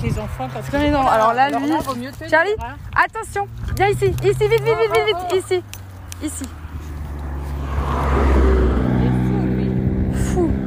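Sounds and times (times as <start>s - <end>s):
speech: 0.0s - 6.6s
large truck passing on a road: 3.9s - 10.6s.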